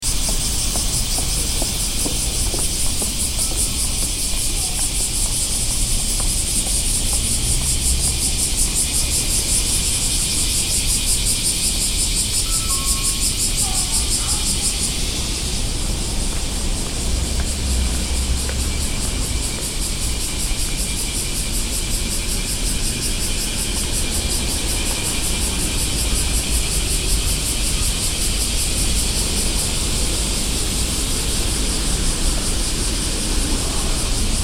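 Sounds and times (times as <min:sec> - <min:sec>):
summer city ambience: 0:00.0 - 0:34.4.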